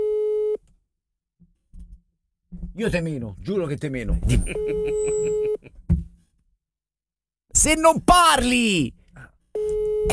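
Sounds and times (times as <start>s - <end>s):
speech: 2.8s - 5.8s, 7.6s - 9.3s
laughter: 4.2s - 5.7s
telephone ringing tone on a call: 4.5s - 5.6s, 9.6s - 10.1s.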